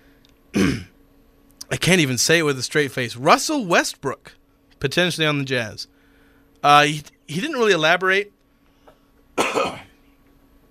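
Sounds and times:
person clearing throat: 0:00.5 - 0:01.0, 0:09.4 - 0:10.0
person coughing: 0:00.5 - 0:01.0, 0:08.9 - 0:10.0
speech: 0:01.8 - 0:05.9, 0:06.6 - 0:08.4.

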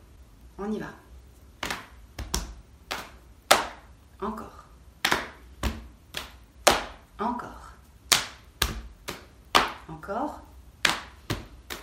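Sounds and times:
speech: 0:00.6 - 0:01.0, 0:04.2 - 0:04.5, 0:10.1 - 0:10.4
hands slapping knees and chest in a seated clapping rhythm: 0:01.5 - 0:03.9, 0:05.0 - 0:07.1, 0:08.0 - 0:10.0, 0:10.8 - 0:11.8.

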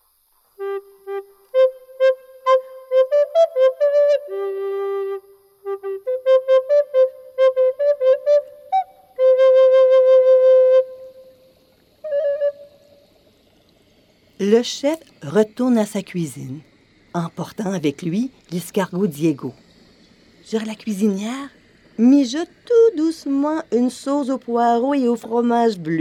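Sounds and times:
chef whistling a lively tune: 0:00.6 - 0:11.5, 0:12.1 - 0:12.8
speech: 0:14.5 - 0:19.6, 0:20.5 - 0:26.0.

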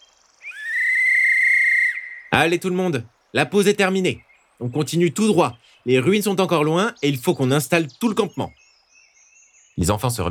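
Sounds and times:
sustained whistle blast: 0:00.5 - 0:02.4
speech: 0:02.4 - 0:08.6, 0:09.8 - 0:10.3.

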